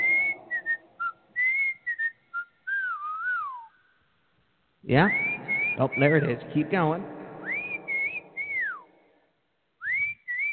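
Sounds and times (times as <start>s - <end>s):
person whistling a tune: 0.0s - 3.8s, 5.0s - 6.3s, 7.4s - 8.9s, 9.8s - 10.5s
speech: 4.8s - 7.2s.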